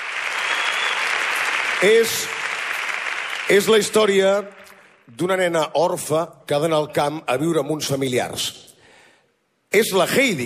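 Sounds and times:
sustained applause from a large audience: 0.0s - 5.0s
speech: 1.8s - 2.4s, 3.5s - 8.7s, 9.7s - 10.4s.

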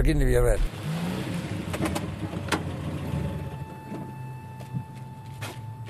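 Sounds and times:
low car engine rumble while parking at an airport: 0.0s - 5.8s
faint steady electronic tone: 3.2s - 5.8s.

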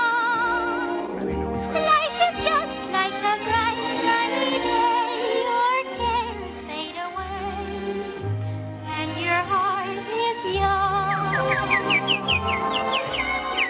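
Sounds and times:
lively orchestral melody from a 1937 animated film: 0.0s - 13.6s
birds chirping and tweeting: 11.0s - 13.6s.

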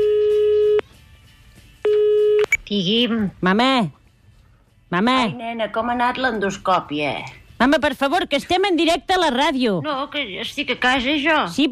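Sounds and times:
ringing tone of an outgoing telephone call: 0.0s - 0.8s, 1.9s - 2.5s
speech: 2.7s - 4.0s, 4.9s - 11.7s.

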